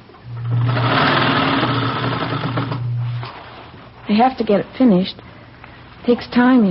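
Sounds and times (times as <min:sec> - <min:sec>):
sewing machine running while rows of ruffles are sewn: 0:00.4 - 0:02.8
speech: 0:04.1 - 0:05.3, 0:06.0 - 0:06.7.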